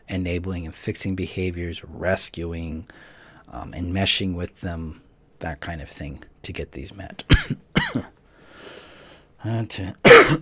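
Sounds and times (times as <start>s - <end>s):
speech: 0.1s - 8.1s, 9.4s - 10.4s
person coughing: 7.3s - 8.2s, 10.0s - 10.4s.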